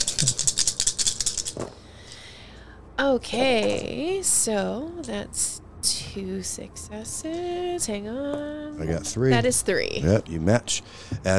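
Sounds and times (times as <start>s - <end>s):
dice rattling in a small hard dice roller: 0.0s - 1.6s
speech: 3.0s - 11.3s.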